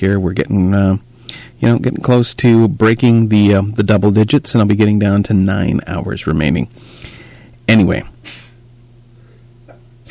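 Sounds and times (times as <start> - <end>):
speech: 0.0 - 7.1, 7.7 - 8.4
steady low electrical hum: 0.0 - 10.0
faint breathy intake before a sneeze: 6.8 - 7.6
sneeze in a studio: 8.3 - 8.6.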